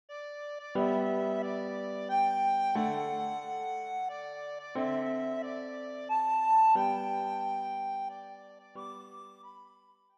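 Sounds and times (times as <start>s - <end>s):
soprano recorder melody: 0.6s - 10.1s.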